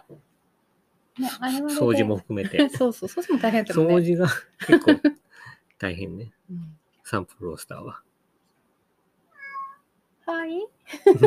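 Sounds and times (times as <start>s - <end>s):
speech: 1.2s - 5.2s, 5.8s - 8.1s, 10.3s - 11.2s
laughter: 1.4s - 5.2s, 10.9s - 11.2s
cat meowing: 9.3s - 9.9s.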